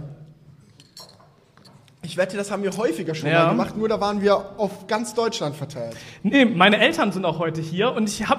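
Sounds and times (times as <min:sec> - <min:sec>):
audience clinking ceramic tea cups in a toast: 0:00.6 - 0:02.0
speech: 0:02.1 - 0:08.3.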